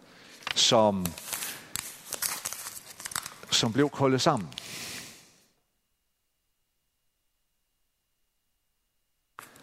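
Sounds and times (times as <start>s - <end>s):
fine white blank sheet of paper being crumpled: 0.4s - 3.8s
speech: 0.6s - 1.2s, 3.5s - 4.9s.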